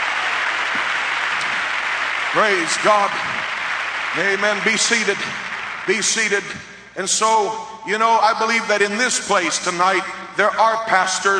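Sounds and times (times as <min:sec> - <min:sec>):
audience at a camp meeting clapping in praise: 0:00.0 - 0:06.7
speech: 0:02.3 - 0:03.5, 0:04.1 - 0:11.3.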